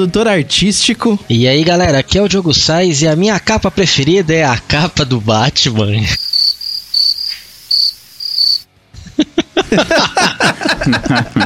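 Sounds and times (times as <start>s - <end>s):
speech: 0.0s - 8.2s, 9.7s - 11.4s
cricket chirping in rhythmic pulses: 6.2s - 8.7s
laughter: 9.0s - 11.4s.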